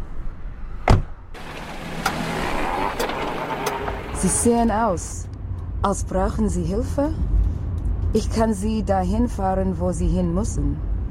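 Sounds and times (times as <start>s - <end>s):
car door thud: 0.8s - 3.9s
steady low car-interior hum: 0.9s - 11.0s
speech: 4.2s - 7.3s, 8.1s - 10.9s.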